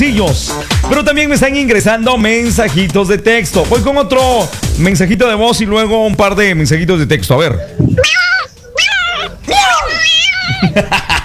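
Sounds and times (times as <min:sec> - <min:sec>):
speech: 0:00.0 - 0:08.3, 0:10.7 - 0:11.0
rustling and scuffling: 0:01.2 - 0:10.6
laughter: 0:07.2 - 0:11.2
cat meowing: 0:07.7 - 0:10.9.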